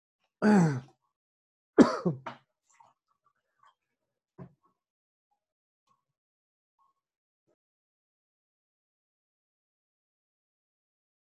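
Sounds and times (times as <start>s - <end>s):
sharp coughing gasps: 0.4s - 0.8s, 1.8s - 2.3s
person choking and gasping for air: 0.4s - 0.9s.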